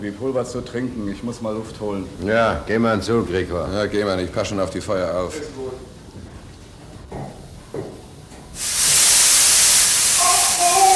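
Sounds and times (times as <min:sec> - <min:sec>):
speech: 0:00.0 - 0:06.0
steam hissing from a ruptured steam pipe in a ship's stoking room: 0:08.5 - 0:10.9.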